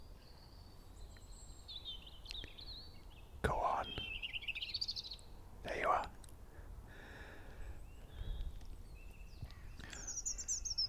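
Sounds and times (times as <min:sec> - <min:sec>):
robin warbling song of high wavering twitters and thin trills: 0:01.1 - 0:06.0, 0:07.9 - 0:10.8.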